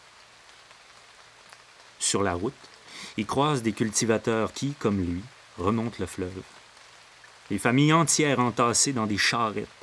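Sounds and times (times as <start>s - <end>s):
steady rain: 0.0s - 9.8s
speech: 2.1s - 6.6s, 7.5s - 9.8s.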